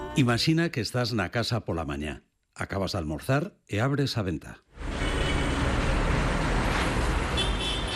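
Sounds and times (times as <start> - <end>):
speech: 0.2 - 4.7
street traffic rolling past: 4.8 - 7.9.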